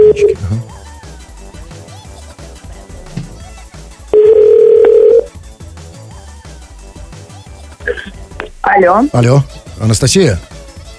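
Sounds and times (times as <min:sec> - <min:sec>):
telephone ringing tone while calling: 0:00.0 - 0:00.6, 0:04.1 - 0:05.3
rhythmic music track: 0:00.0 - 0:10.9
speech: 0:08.8 - 0:10.5.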